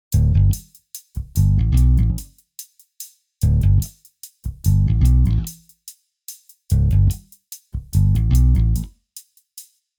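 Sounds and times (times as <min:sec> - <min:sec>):
bass hi-hat hit: 0:00.1 - 0:02.3, 0:03.4 - 0:05.6, 0:06.7 - 0:08.9.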